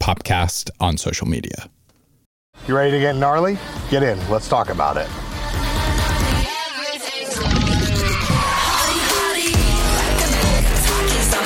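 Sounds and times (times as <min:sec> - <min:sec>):
speech: 0:00.0 - 0:01.8, 0:02.6 - 0:05.2
loud chaotic pop track with heavy low beats: 0:03.5 - 0:11.4
wavering screechy high tones: 0:07.4 - 0:09.5.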